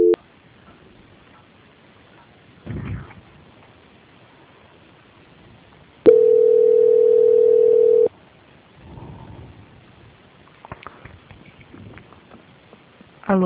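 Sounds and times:
telephone line beep during call transfer: 6.1 - 8.1.

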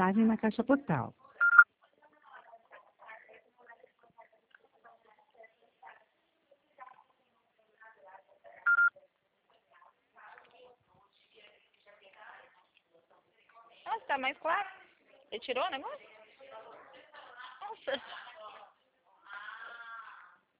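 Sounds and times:
speech: 0.0 - 1.3, 14.0 - 16.1, 17.7 - 18.2
telephone keypad tones as numbers are dialed to call clients: 1.4 - 1.6, 8.7 - 8.9.

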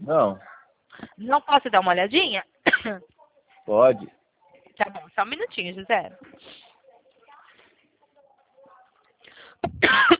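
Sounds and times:
speech: 0.1 - 0.5, 1.1 - 3.1, 3.7 - 4.2, 4.8 - 6.6, 9.6 - 10.1
person coughing: 9.7 - 10.1.

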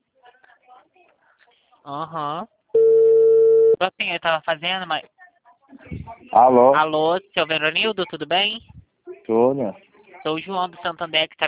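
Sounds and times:
speech: 1.8 - 2.6, 3.8 - 5.2, 6.2 - 8.7, 9.3 - 11.4
telephone ringing back on an outgoing call: 2.8 - 3.8.

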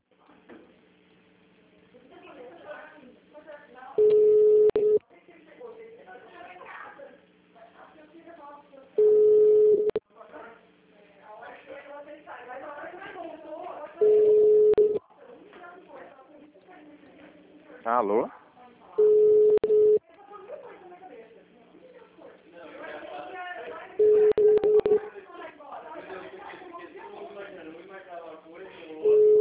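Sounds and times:
hospital telephone line hold tone beeps during call transfer: 4.0 - 5.0, 9.0 - 10.0, 14.0 - 15.0, 19.0 - 20.0, 24.0 - 25.0, 29.1 - 29.3.

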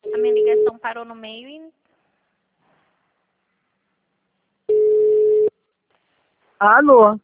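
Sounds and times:
telephone tone after a dropped call: 0.0 - 0.7, 4.7 - 5.5
speech: 0.9 - 1.8, 6.6 - 7.2.

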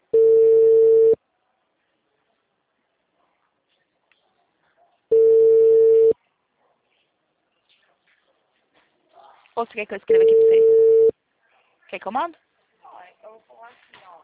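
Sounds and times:
ringing tone of an outgoing telephone call: 0.1 - 1.2, 5.1 - 6.2, 10.1 - 11.1
speech: 9.6 - 10.8, 11.9 - 12.5.

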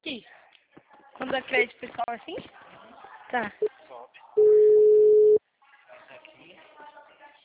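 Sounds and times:
speech: 1.3 - 2.6, 3.3 - 3.8
telephone electronic tone: 4.4 - 5.4.

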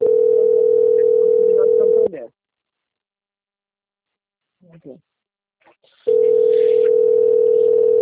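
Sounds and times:
telephone dial tone through a phone speaker: 0.0 - 2.1, 6.1 - 8.0
speech: 4.8 - 6.2.

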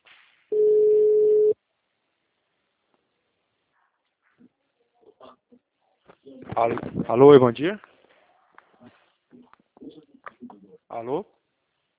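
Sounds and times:
outgoing phone call ringback tone: 0.5 - 1.6
speech: 6.6 - 7.9, 11.0 - 11.4.

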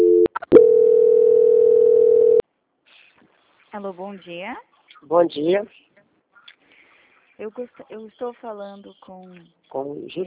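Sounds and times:
telephone line clicks and beeps while a call is transferred: 0.0 - 2.4
speech: 3.8 - 5.9, 7.4 - 10.2.

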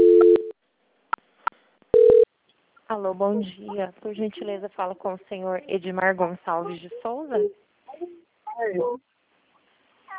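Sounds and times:
telephone transfer tone as a bank call is passed to quality control: 2.0 - 2.3
speech: 2.9 - 9.1.

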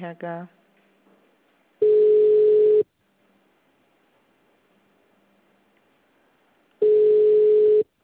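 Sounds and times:
telephone tone while placing a call: 1.8 - 2.9, 6.8 - 7.9.

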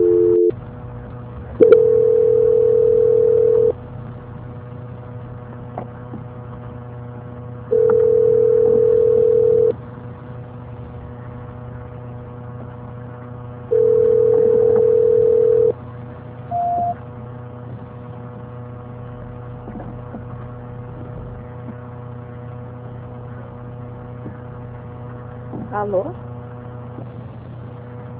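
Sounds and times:
telephone line tones during a call transfer: 0.0 - 0.6, 1.6 - 3.8, 7.7 - 9.8, 13.7 - 15.8, 16.5 - 17.0
low constant hum: 0.0 - 28.1
short high beep: 16.5 - 17.0.

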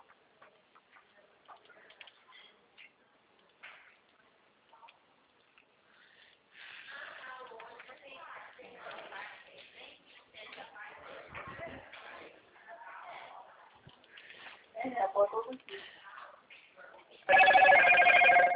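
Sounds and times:
landline telephone with bright warbling electronic ring: 17.3 - 18.5.

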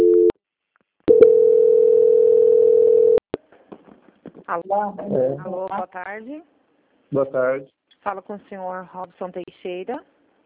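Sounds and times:
telephone tone during bank call transfer: 0.0 - 0.3, 1.1 - 3.2
faint scattered noises: 3.4 - 10.4
speech: 4.5 - 10.1.

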